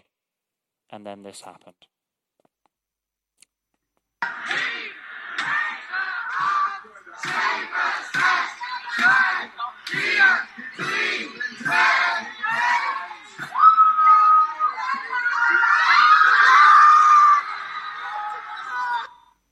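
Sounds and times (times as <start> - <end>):
speech: 0.9 - 2.0
football stadium crowd chanting: 4.2 - 19.2.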